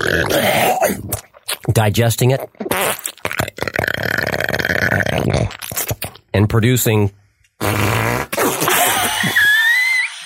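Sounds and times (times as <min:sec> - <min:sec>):
speech: 0:00.0 - 0:00.9, 0:01.8 - 0:03.0, 0:06.4 - 0:07.9
person making a fart-like raspberry with the mouth: 0:00.0 - 0:06.3, 0:07.6 - 0:09.4.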